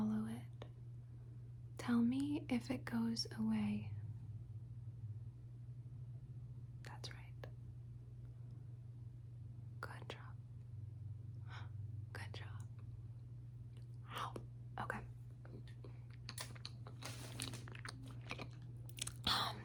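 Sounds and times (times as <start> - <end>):
steady low hum: 0.0 - 19.6
speech: 1.8 - 4.0
faint whispering: 6.9 - 7.5, 9.8 - 10.4, 11.5 - 12.8
chewing mouth sounds of someone pretending to eat fire: 15.4 - 19.6.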